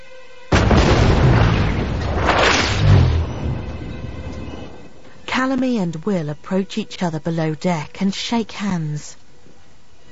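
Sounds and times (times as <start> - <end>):
warship's cannons firing: 0.5 - 3.9
speech: 5.4 - 9.2.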